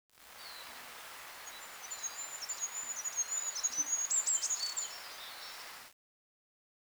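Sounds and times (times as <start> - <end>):
steady background hiss: 0.2 - 5.9
bird chirping and twittering: 0.3 - 5.9.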